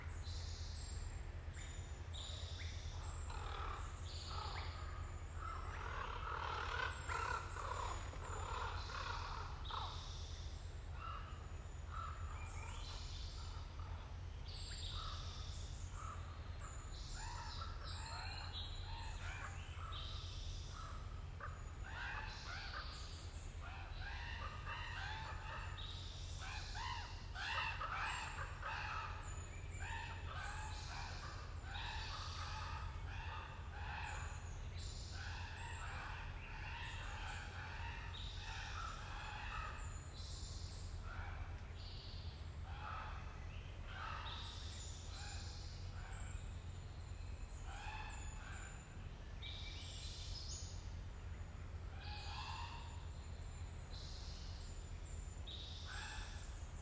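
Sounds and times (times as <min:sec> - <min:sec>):
forest ambience: 0:00.0 - 0:56.7.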